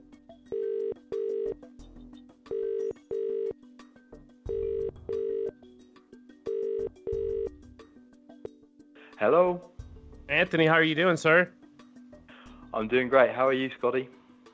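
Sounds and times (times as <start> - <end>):
outgoing phone call ringing tone double beeps: 0.5 - 1.6, 2.5 - 3.6, 4.5 - 5.6, 6.5 - 7.6
speech: 9.2 - 9.7, 10.3 - 11.6, 12.8 - 14.2.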